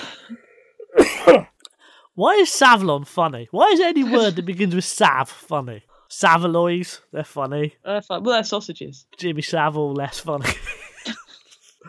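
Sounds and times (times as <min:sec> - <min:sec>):
harsh coughs: 0:00.8 - 0:01.6
speech: 0:01.3 - 0:01.5, 0:02.2 - 0:11.2
laughter: 0:10.4 - 0:11.8.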